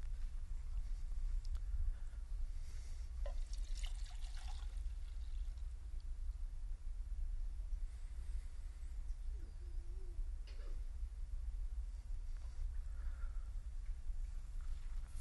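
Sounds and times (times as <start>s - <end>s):
low constant rumble: 0.0s - 15.1s
water pouring into a container: 3.3s - 5.7s.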